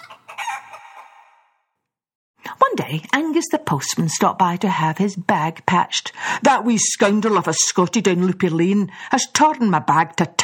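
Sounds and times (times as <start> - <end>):
hen clucking loudly in a squawking burst: 0.0 - 1.5
speech: 2.7 - 10.4.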